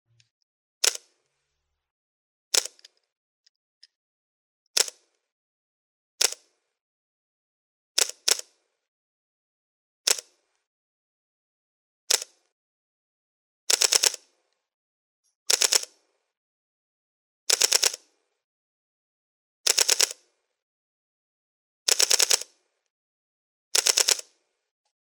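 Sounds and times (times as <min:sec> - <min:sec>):
Panasonic Lumix DC S1R camera: 0:00.8 - 0:01.2, 0:02.5 - 0:03.0, 0:04.8 - 0:05.3, 0:06.2 - 0:06.6, 0:08.0 - 0:08.6, 0:10.1 - 0:10.4, 0:12.1 - 0:12.6, 0:13.7 - 0:14.4, 0:15.5 - 0:16.0, 0:17.5 - 0:18.2, 0:19.6 - 0:20.6, 0:21.9 - 0:22.8, 0:23.7 - 0:24.5.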